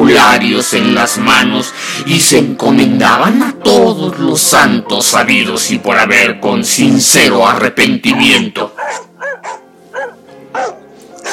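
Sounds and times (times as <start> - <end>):
speech: 0.3 - 8.8
dogs barking with a yelping whiny edge: 8.1 - 11.3.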